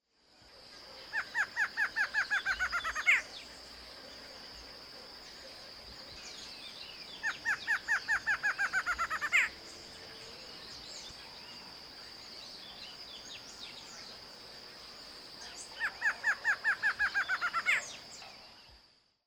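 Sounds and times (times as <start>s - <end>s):
barred antshrike Thamnophilus doliatus calling: 1.1s - 3.4s, 7.1s - 9.6s, 15.4s - 18.4s.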